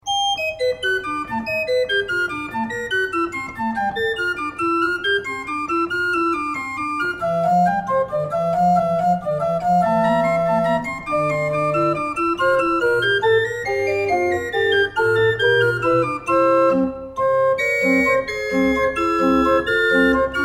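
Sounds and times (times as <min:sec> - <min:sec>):
organ playing Gedeckt and Principal stops: 0:00.0 - 0:20.4.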